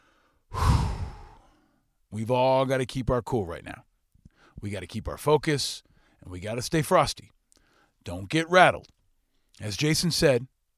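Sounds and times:
big deep breath in and out: 0:00.0 - 0:01.8, 0:04.3 - 0:04.6, 0:07.6 - 0:08.0
speech: 0:02.1 - 0:03.9, 0:04.6 - 0:07.4, 0:08.0 - 0:09.0, 0:09.6 - 0:10.5.

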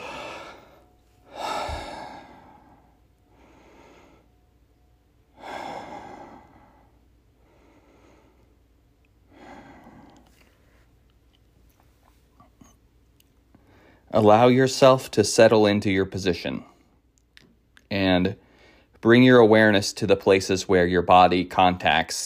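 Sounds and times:
deep heavy breaths during a seated meditation: 0:00.0 - 0:04.5, 0:05.3 - 0:10.9, 0:18.4 - 0:19.0
speech: 0:14.1 - 0:16.7, 0:18.2 - 0:18.4, 0:19.0 - 0:22.2.

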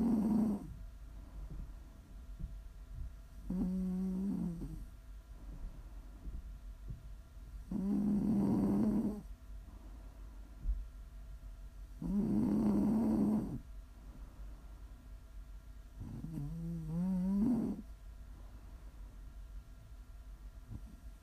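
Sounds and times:
quiet breathing: 0:00.0 - 0:10.9, 0:11.9 - 0:15.2, 0:15.9 - 0:19.5
faint hum: 0:00.0 - 0:21.2
person snoring: 0:03.5 - 0:04.8, 0:07.7 - 0:09.2, 0:12.0 - 0:13.6, 0:16.1 - 0:17.8.

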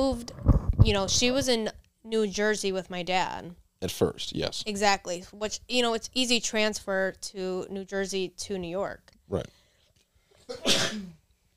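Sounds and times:
speech: 0:00.0 - 0:09.6, 0:10.5 - 0:11.2
two people sneezing: 0:10.5 - 0:11.2.

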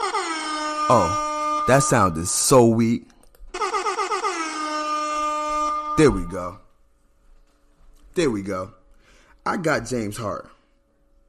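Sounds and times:
air horn sound effect blaring: 0:00.0 - 0:02.4, 0:03.6 - 0:06.6
speech: 0:00.9 - 0:03.1, 0:06.0 - 0:06.6, 0:08.2 - 0:08.8, 0:09.4 - 0:10.6.

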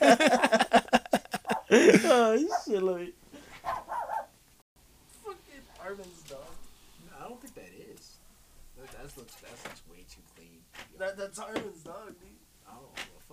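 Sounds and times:
laughter: 0:00.0 - 0:02.5
dog barking in short sharp bursts: 0:01.4 - 0:01.7, 0:02.5 - 0:02.8, 0:03.6 - 0:04.4
speech: 0:01.8 - 0:03.2, 0:08.8 - 0:13.1.

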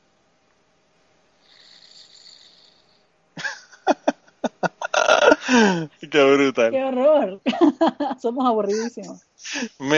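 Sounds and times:
man snoring with raspy breath: 0:01.4 - 0:03.0
laughter: 0:03.4 - 0:05.8, 0:07.5 - 0:09.1
speech: 0:05.5 - 0:09.9.

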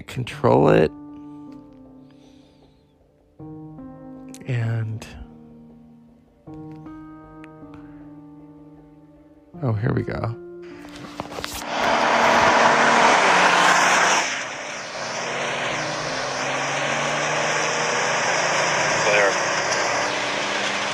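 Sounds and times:
speech: 0:00.1 - 0:01.0, 0:09.8 - 0:10.4
car engine roaring while driven fast: 0:10.7 - 0:20.9.

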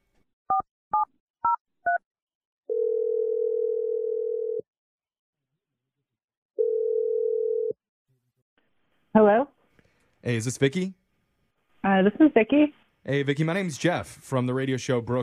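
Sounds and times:
long steady low telephone ringing tones: 0:02.7 - 0:04.6, 0:06.6 - 0:07.8
speech: 0:09.2 - 0:09.5, 0:10.3 - 0:11.0, 0:11.8 - 0:15.2.

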